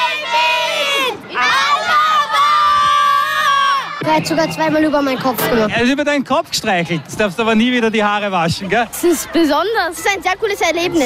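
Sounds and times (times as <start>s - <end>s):
children shouting together in unison at a fan event: 0.0s - 4.0s
speech: 4.2s - 11.0s.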